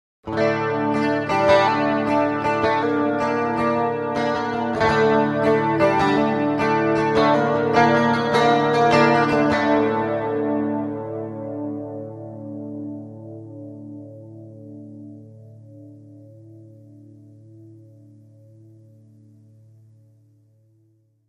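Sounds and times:
electric guitar with flanger effect: 0.3s - 15.2s.

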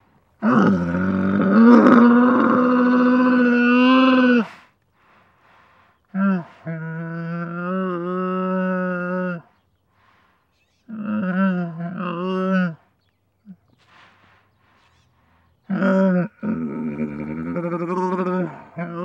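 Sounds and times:
camel moaning long: 0.4s - 4.5s, 6.2s - 9.5s, 10.9s - 12.9s, 15.7s - 19.0s.

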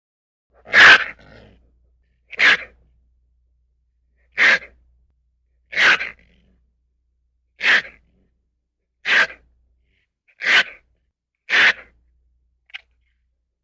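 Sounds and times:
raccoon calls: 0.6s - 1.5s, 2.3s - 2.8s, 4.3s - 4.8s, 5.7s - 6.3s, 7.6s - 8.0s, 9.0s - 9.5s, 10.4s - 10.8s, 11.5s - 12.0s.

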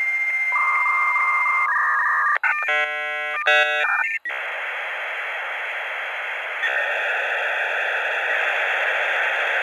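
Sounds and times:
computer modem: 0.2s - 9.6s.

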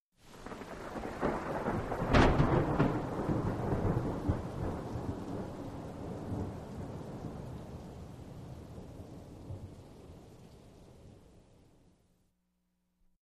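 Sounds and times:
rolling thunder: 0.3s - 10.2s.

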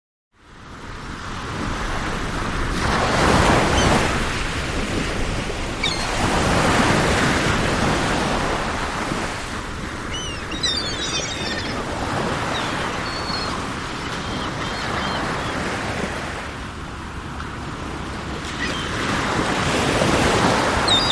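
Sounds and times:
ocean waves: 0.4s - 21.1s
seagulls calling: 3.4s - 4.1s, 5.8s - 6.9s, 9.5s - 16.4s, 18.4s - 19.4s, 20.2s - 21.1s.

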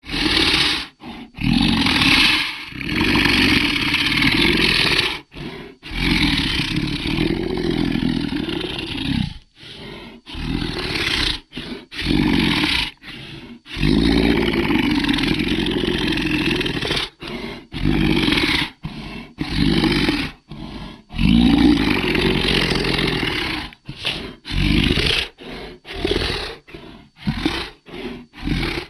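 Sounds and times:
monster long growls: 0.0s - 28.8s.

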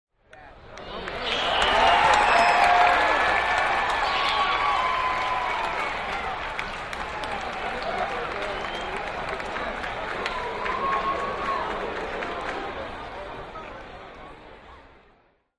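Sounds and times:
large baseball crowd: 0.2s - 15.5s.

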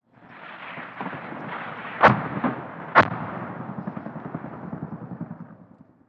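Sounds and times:
AH-1 Sea Cobra helicopter rocket firing: 0.0s - 6.0s.

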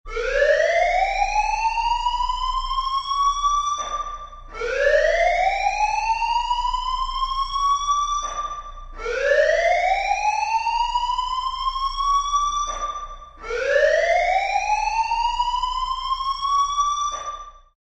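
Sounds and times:
building fire alarm ringing: 0.1s - 17.7s.

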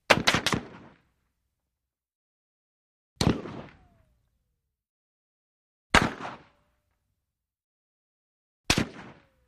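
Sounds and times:
AK47 rifle single shots: 0.1s - 1.0s, 3.2s - 3.9s, 5.9s - 6.6s, 8.7s - 9.4s.

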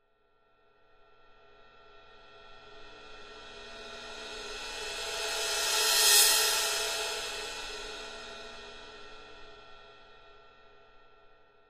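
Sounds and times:
thin cymbal: 2.7s - 9.8s.

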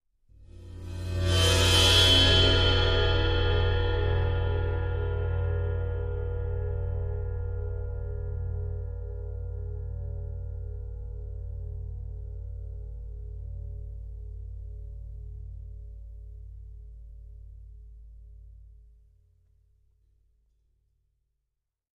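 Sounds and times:
bowed 18-inch Sabian cymbal: 0.5s - 14.7s.

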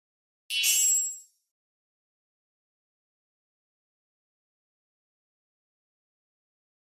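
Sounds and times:
electric spring: 0.5s - 1.3s.

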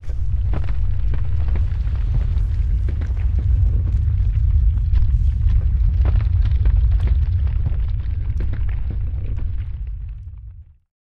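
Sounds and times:
earthquake rumble: 0.0s - 10.9s.

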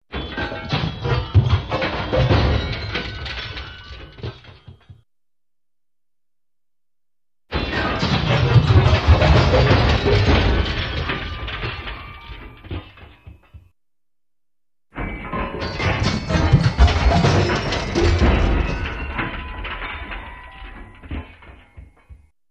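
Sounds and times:
metal crashes: 0.1s - 5.0s, 7.5s - 13.6s, 15.0s - 22.2s
metal falling down stairs: 0.1s - 5.0s, 8.0s - 13.7s, 15.0s - 22.3s.

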